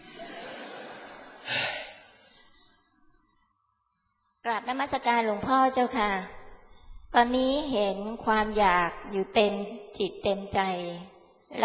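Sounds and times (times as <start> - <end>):
laughter: 0.0 - 1.5
faint steady hiss: 0.0 - 9.6
monk catching his breath with a quick breathy inhale: 1.4 - 3.5
speech: 4.5 - 6.4, 7.2 - 11.6.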